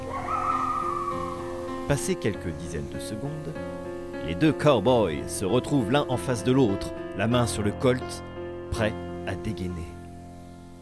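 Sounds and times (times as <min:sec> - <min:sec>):
coyote howling: 0:00.0 - 0:01.9
speech: 0:01.9 - 0:10.0.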